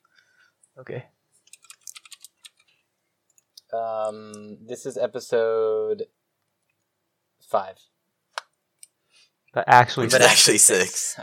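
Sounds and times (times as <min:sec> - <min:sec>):
speech: 0:00.8 - 0:01.2, 0:03.7 - 0:06.2, 0:07.5 - 0:08.0, 0:09.5 - 0:11.2
computer keyboard typing as a number is typed in by hand: 0:01.4 - 0:02.7.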